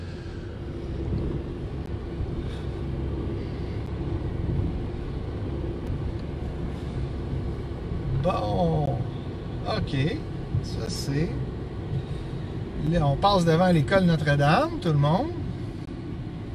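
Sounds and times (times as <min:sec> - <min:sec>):
Nissan Micra small car driving: 0:00.0 - 0:16.5
speech: 0:08.2 - 0:08.7, 0:09.8 - 0:11.4, 0:12.8 - 0:15.4.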